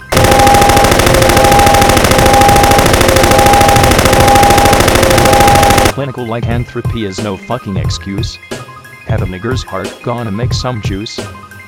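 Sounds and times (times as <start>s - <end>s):
machine-gun fire: 0.1s - 6.0s
speech: 6.0s - 11.4s.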